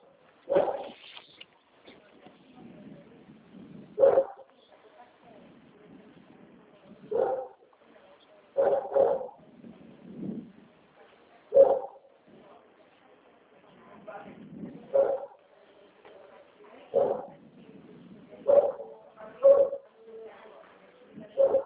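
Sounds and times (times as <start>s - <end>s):
low murmuring: 0.0s - 21.6s
small dog barking nervously at a small bird: 0.5s - 1.0s, 4.0s - 4.5s, 7.1s - 7.6s, 8.6s - 9.4s, 11.5s - 12.0s, 18.5s - 19.8s, 21.4s - 21.6s.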